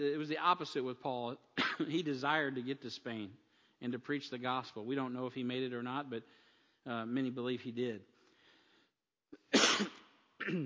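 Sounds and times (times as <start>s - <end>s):
speech: 0.0s - 8.1s, 9.6s - 10.6s
person coughing harshly: 1.6s - 2.0s, 9.4s - 10.6s
throat clearing: 9.4s - 10.6s.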